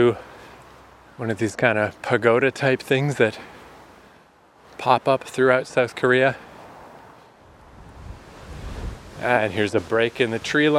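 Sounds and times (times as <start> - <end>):
speech: 0.0 - 0.3, 1.2 - 3.5, 4.8 - 6.5, 9.2 - 10.7
wind buffeting the microphone: 7.5 - 9.4
ocean surf rolling in on the South Korean coast: 7.6 - 10.7.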